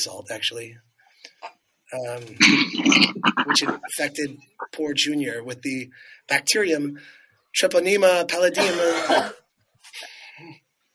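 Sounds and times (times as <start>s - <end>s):
speech: 0.0s - 10.6s
raspy cough: 2.4s - 3.9s, 8.6s - 9.4s
throaty rasp: 2.4s - 4.7s.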